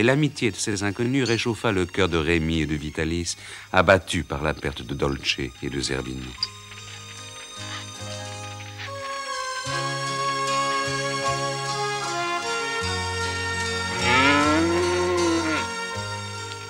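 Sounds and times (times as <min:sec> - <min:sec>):
speech: 0:00.0 - 0:06.6
gentle music with sustained low notes: 0:00.0 - 0:16.6
cow mooing: 0:13.9 - 0:15.9.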